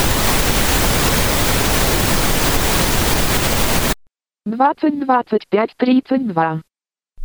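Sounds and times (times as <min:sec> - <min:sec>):
pink noise test signal at minus 3 decibels: 0:00.0 - 0:04.0
speech: 0:04.5 - 0:06.7.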